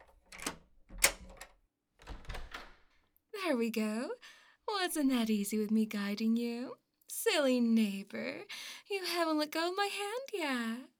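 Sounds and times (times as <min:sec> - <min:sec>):
key rattling and scraping in a door lock: 0:00.0 - 0:02.9
fiddling with a door latch: 0:00.0 - 0:03.0
speech: 0:03.5 - 0:10.9.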